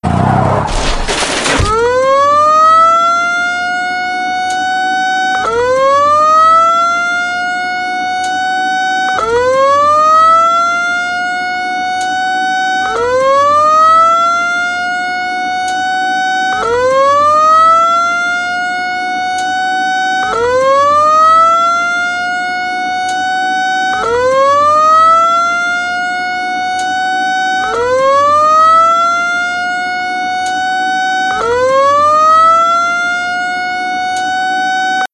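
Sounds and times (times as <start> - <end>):
Chicago Coin Speedway Mark III coin operated driving arcade game crash sound: 0.0 - 2.0
Chicago Coin Speedway Mark III coin operated driving arcade game ambulance sound: 0.1 - 35.1.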